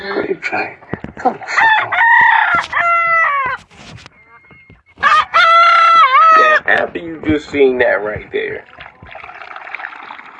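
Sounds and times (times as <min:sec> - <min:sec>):
speech: 0:00.3 - 0:02.7, 0:06.7 - 0:08.7
rooster crowing: 0:01.5 - 0:03.6, 0:05.0 - 0:06.6
rustling: 0:02.5 - 0:05.1.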